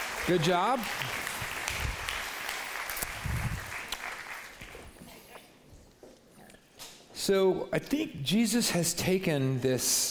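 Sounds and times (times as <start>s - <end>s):
crowd of people standing and applauding: 0.0s - 4.8s
speech: 0.2s - 1.2s, 7.2s - 10.0s.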